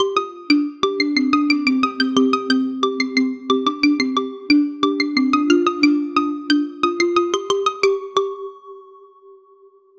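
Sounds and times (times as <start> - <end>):
warm modern tech melody with plucks: 0.0 - 8.9.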